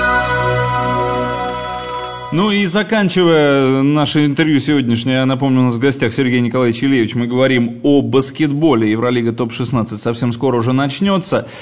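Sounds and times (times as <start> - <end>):
phone ringtone: 0.0 - 2.9
speech: 2.3 - 11.5.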